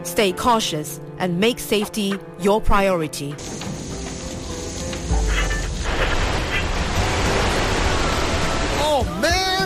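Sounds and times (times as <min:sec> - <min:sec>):
speech: 0:00.0 - 0:03.8
heavy rain pouring: 0:03.4 - 0:09.6.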